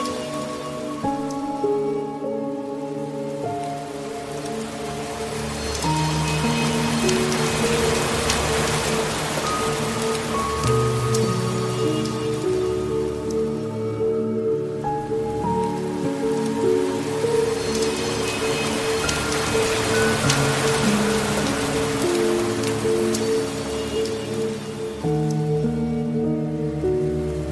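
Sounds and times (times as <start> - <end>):
gentle rain: 0.0 - 27.5
solfeggio frequencies: 0.0 - 27.5
soothing piano melodies: 0.0 - 27.5.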